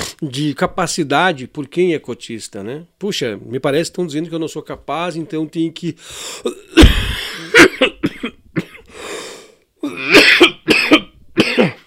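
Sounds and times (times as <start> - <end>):
speech: 0.2 - 8.1
person coughing harshly: 6.4 - 8.9, 9.8 - 11.8
raspy throat-clearing: 6.4 - 8.9, 9.8 - 11.8.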